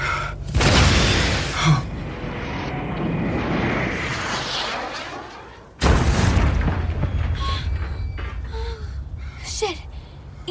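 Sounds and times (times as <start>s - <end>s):
explosion of a tank struck by a shoulder-fired weapon: 0.6s - 8.4s
speech: 1.6s - 1.9s.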